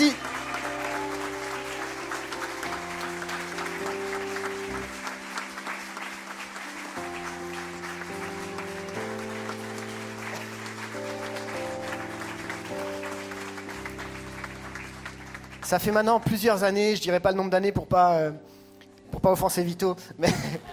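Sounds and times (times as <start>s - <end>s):
large crowd applauding loudly: 0.0s - 16.4s
music playing: 0.0s - 20.7s
speech: 15.7s - 18.5s, 19.2s - 20.7s
laughter: 20.2s - 20.7s.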